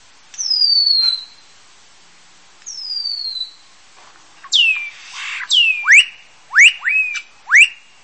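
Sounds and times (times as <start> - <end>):
melodic many-voiced chirping: 0.4 - 1.5, 2.7 - 3.6, 4.4 - 7.9.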